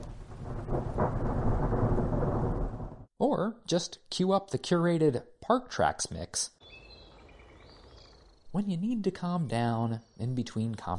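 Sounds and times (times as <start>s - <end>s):
steady hiss of rain: 0.0s - 3.1s
thunder from a thunderstorm at Big Bend National Park: 0.0s - 3.1s
speech: 3.2s - 6.6s, 8.5s - 10.9s.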